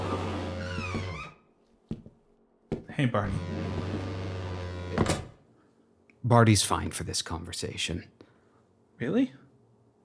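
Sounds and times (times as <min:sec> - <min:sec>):
door shutting: 0:00.0 - 0:01.4, 0:03.2 - 0:05.4
steady low electrical hum: 0:00.0 - 0:10.0
speech: 0:03.0 - 0:03.6, 0:06.3 - 0:08.2, 0:09.0 - 0:09.4.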